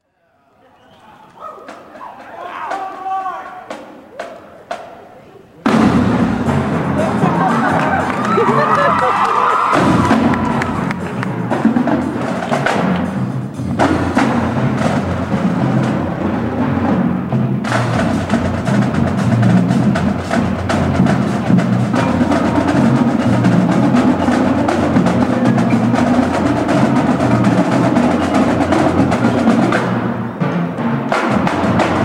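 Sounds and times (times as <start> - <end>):
drumline: 1.5 - 32.0
laughter: 6.8 - 12.0.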